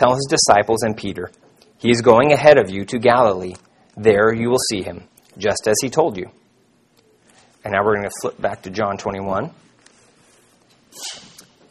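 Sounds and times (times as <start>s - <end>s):
speech: 0.0s - 6.4s, 7.6s - 9.6s, 11.0s - 11.3s
sneeze: 10.9s - 11.4s.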